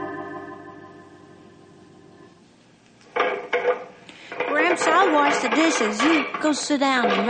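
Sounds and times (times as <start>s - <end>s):
dishes clattering while being washed: 3.1s - 7.2s
voices talking: 4.3s - 7.2s.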